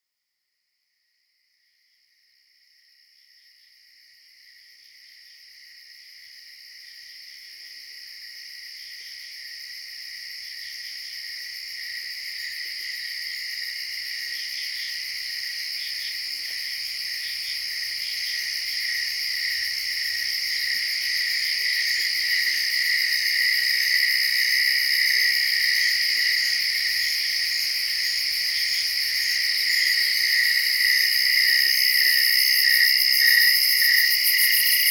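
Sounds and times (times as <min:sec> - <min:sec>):
cicadas: 0:00.7 - 0:34.8.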